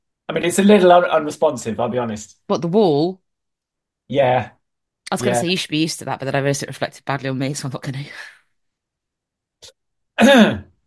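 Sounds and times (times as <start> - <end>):
speech: 0.3 - 3.2, 4.1 - 8.4, 9.6 - 10.7
short loud cough like throat-clearing: 10.2 - 10.7.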